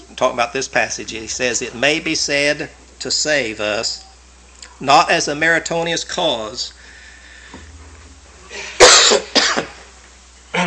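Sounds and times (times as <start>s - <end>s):
speech: 0.2s - 4.1s, 4.8s - 6.8s, 8.5s - 9.3s
person coughing from a tickle in the throat: 8.5s - 9.8s
throat clearing from a tickle in the throat: 8.6s - 9.8s.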